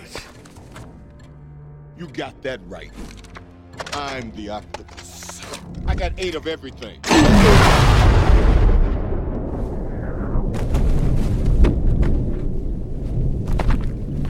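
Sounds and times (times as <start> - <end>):
speech: 2.0 - 3.3, 4.0 - 8.5
heavy boom in a film: 7.1 - 12.4
low rumbling background: 7.1 - 14.2.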